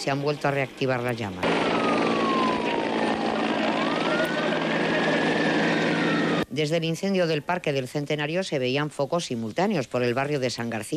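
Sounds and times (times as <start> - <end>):
speech: 0.0 - 1.7, 6.6 - 10.9
firefighting helicopters roaring overhead: 0.0 - 6.4.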